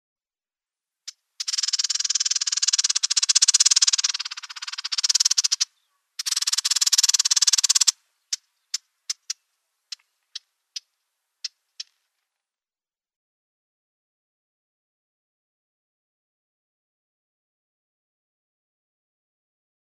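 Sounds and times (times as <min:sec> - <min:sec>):
Eastern Orphean Warbler calls: 0:01.1 - 0:12.1.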